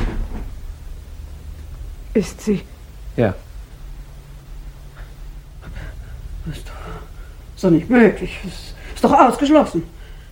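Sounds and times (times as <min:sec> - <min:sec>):
wooden door pulled shut into its frame: 0:00.0 - 0:00.7
speech: 0:02.1 - 0:03.4, 0:06.4 - 0:06.9, 0:07.6 - 0:10.0.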